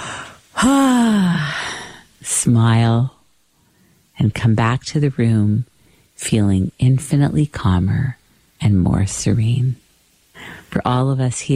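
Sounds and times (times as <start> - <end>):
person yawning: 0.0 - 1.9
speech: 0.6 - 1.3, 2.4 - 3.2, 4.2 - 9.8, 10.4 - 11.5.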